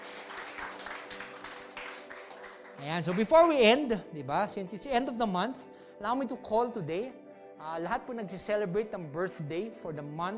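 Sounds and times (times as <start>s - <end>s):
crowd applauding: 0.0s - 3.5s
speech: 2.8s - 10.3s.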